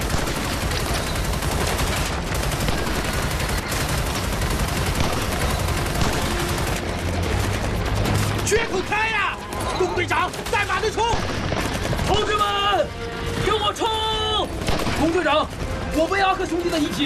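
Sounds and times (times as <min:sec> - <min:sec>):
machine gun fire in a battle: 0:00.0 - 0:12.4, 0:14.6 - 0:15.8
speech: 0:12.1 - 0:17.0.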